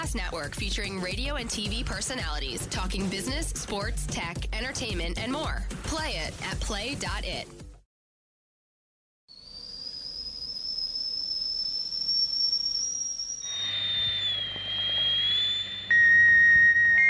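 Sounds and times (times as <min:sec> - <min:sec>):
speech: 0:00.1 - 0:07.6
tea kettle whistling in a high piercing tone: 0:09.3 - 0:17.0.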